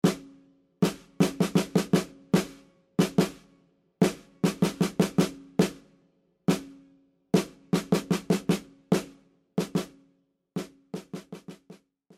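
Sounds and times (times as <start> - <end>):
drum beat: 0.0 - 0.2, 0.8 - 3.4, 4.0 - 5.8, 7.4 - 9.9, 10.6 - 12.1.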